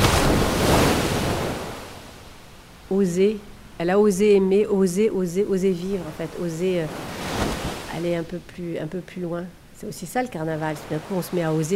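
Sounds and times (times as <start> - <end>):
sea waves breaking on a beach: 0.0 - 3.0, 5.8 - 8.8, 10.4 - 11.7
speech: 2.9 - 7.2, 8.0 - 11.7.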